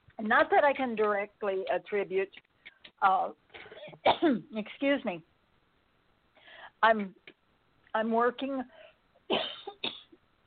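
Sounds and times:
speech: 0:00.2 - 0:05.3, 0:06.8 - 0:07.2, 0:07.9 - 0:09.5
person coughing on a phone call: 0:03.6 - 0:04.4, 0:09.3 - 0:10.1.

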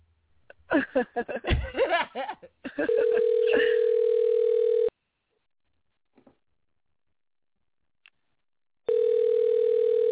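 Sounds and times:
people laughing: 0:00.7 - 0:03.8
electronic phone ringback tone on an outgoing call: 0:02.9 - 0:04.9, 0:08.9 - 0:10.1.

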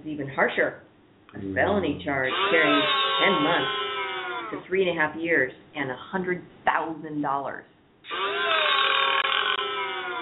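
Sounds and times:
speech: 0:00.0 - 0:03.8, 0:04.5 - 0:08.5
long rasping burp: 0:01.4 - 0:04.6, 0:08.1 - 0:10.1.

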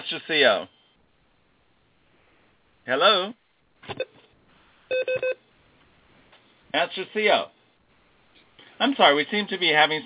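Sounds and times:
speech: 0:00.1 - 0:00.8, 0:02.9 - 0:04.2, 0:04.9 - 0:05.4, 0:06.7 - 0:07.6, 0:08.8 - 0:10.0
short beeps: 0:04.9 - 0:05.4
telephone keypad dialing tones: 0:04.9 - 0:05.4.

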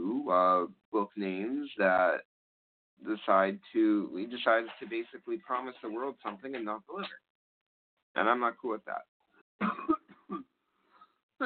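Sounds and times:
speech: 0:00.3 - 0:02.3, 0:03.0 - 0:07.3, 0:08.2 - 0:10.5
man with a persistent cough coughing: 0:09.6 - 0:10.5.

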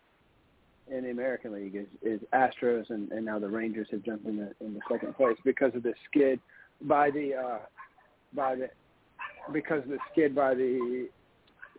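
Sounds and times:
speech: 0:00.9 - 0:08.8, 0:09.4 - 0:11.2
dogs barking and yelping excitedly in a house: 0:04.8 - 0:05.5, 0:07.0 - 0:08.2, 0:09.2 - 0:11.7.

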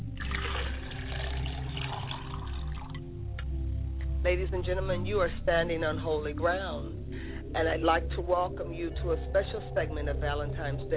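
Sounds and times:
water poured out as a libation in an ancestral rite: 0:00.0 - 0:03.1
low even hum: 0:00.0 - 0:10.9
speech: 0:04.2 - 0:10.9.

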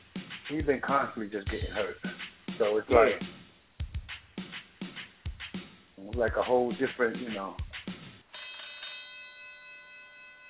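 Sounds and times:
speech: 0:00.5 - 0:03.4, 0:06.1 - 0:07.6
bright bell chime signalling an incoming call: 0:08.3 - 0:10.4.

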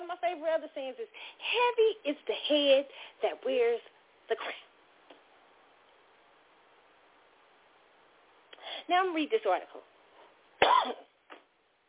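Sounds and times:
speech: 0:00.4 - 0:04.7, 0:08.8 - 0:09.9, 0:10.6 - 0:11.0
single sharp cough: 0:10.6 - 0:11.4.

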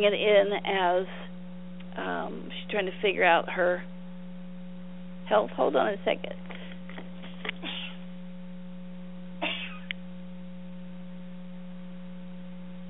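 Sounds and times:
speech: 0:00.0 - 0:01.2, 0:02.0 - 0:04.0, 0:05.3 - 0:06.5
steady low electrical hum: 0:00.0 - 0:12.8
person sneezing turning away from a microphone: 0:07.4 - 0:08.0, 0:09.4 - 0:09.9.

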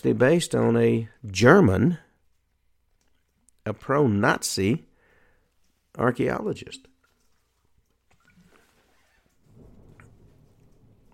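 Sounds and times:
speech: 0:00.0 - 0:02.0, 0:03.7 - 0:04.9, 0:06.0 - 0:06.9
steady rain hissing: 0:08.3 - 0:11.1
deep rolling rumble of thunder: 0:09.4 - 0:11.1.

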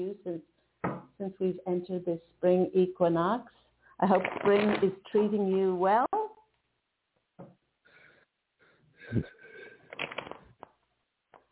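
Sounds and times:
speech: 0:00.0 - 0:00.6, 0:01.3 - 0:06.2, 0:09.1 - 0:09.4
deck of tarot cards being shuffled: 0:04.1 - 0:04.9, 0:09.9 - 0:10.5.

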